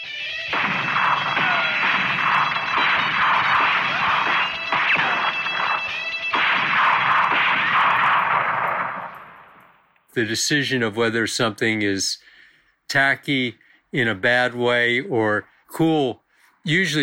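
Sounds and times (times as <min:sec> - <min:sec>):
dense roaring wall of noisy sound: 0:00.0 - 0:09.6
gunshot sound effects: 0:00.5 - 0:09.8
speech: 0:10.2 - 0:12.3, 0:12.9 - 0:17.0.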